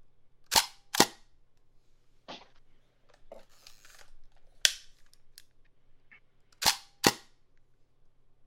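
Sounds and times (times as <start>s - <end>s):
ratcheting of Hasselblad camera winding mechanism: 3.5s - 4.2s
Hasselblad camera mechanical shutter clicks: 6.6s - 7.3s.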